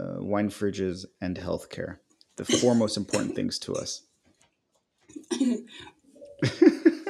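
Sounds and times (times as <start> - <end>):
laughter: 0.0 - 3.9, 6.4 - 7.0
speech: 0.3 - 4.1, 5.1 - 7.0
person coughing: 2.4 - 3.9, 6.4 - 7.0.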